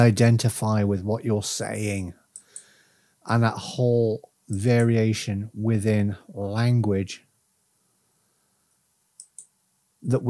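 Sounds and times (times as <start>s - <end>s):
speech: 0.0s - 2.2s, 3.2s - 7.2s, 10.0s - 10.2s
quiet hum: 0.0s - 10.2s
computer mouse clicks: 9.2s - 9.6s.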